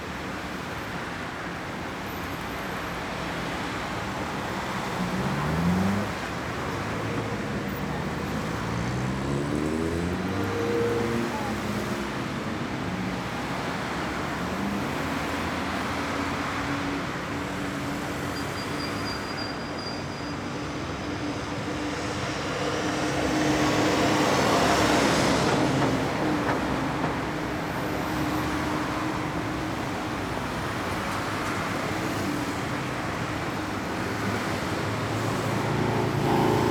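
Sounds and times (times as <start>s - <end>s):
steady town traffic humming with engines rumbling: 0.0s - 36.6s
vehicle accelerating and shifting through gears: 7.4s - 11.7s, 34.4s - 36.6s.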